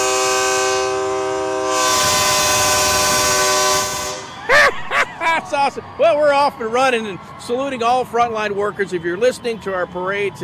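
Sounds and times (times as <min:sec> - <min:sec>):
multi-toned truck air horn in a parade saluting frontline workers: 0:00.0 - 0:04.5
laughter: 0:04.4 - 0:05.8
speech: 0:05.6 - 0:10.4.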